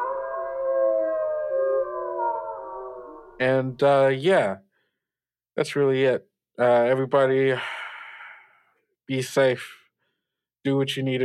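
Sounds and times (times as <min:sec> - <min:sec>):
several people howling in imitation of a wolf pack: 0:00.0 - 0:03.4
speech: 0:03.4 - 0:04.6, 0:05.6 - 0:07.8, 0:09.1 - 0:09.8, 0:10.6 - 0:11.2.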